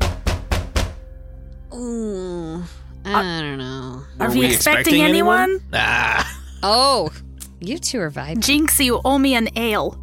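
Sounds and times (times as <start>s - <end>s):
heavy booming knocks on a door in a tower: 0.0s - 1.0s
speech: 1.7s - 10.0s
sustained voice-like tone: 4.2s - 5.9s.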